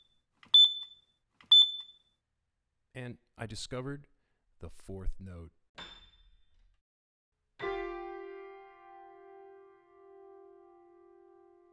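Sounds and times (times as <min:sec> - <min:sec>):
fire alarm shrill electronic beeps: 0:00.0 - 0:02.1
speech: 0:03.0 - 0:05.9.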